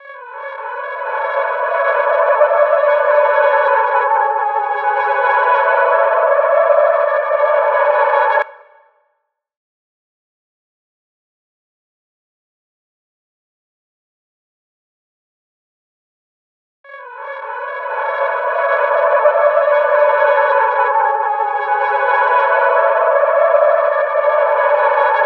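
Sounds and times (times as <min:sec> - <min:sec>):
114 BPM F# minor reverse lead trap melody loop: 0:00.4 - 0:08.4, 0:17.3 - 0:25.2.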